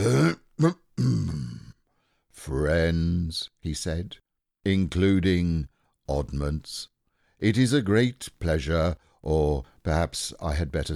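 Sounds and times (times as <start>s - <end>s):
speech: 0.0s - 1.1s, 2.4s - 10.9s
man performing a theatrical cough while reading a story aloud: 0.0s - 1.8s.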